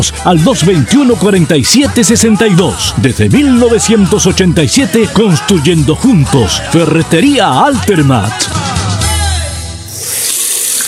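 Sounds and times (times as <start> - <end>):
speech: 0.0 - 8.8
water gushing from an opened tap into a sink: 9.9 - 10.8.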